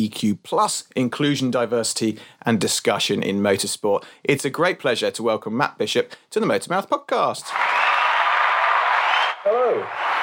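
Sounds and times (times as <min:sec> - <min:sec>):
speech: 0:00.0 - 0:08.0, 0:09.4 - 0:10.2
crowd applauding: 0:07.5 - 0:10.2.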